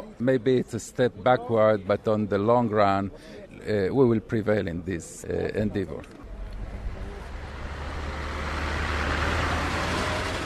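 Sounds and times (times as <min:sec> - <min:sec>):
speech: 0:00.2 - 0:06.2
heavy moving truck engine rumbling: 0:06.2 - 0:10.4.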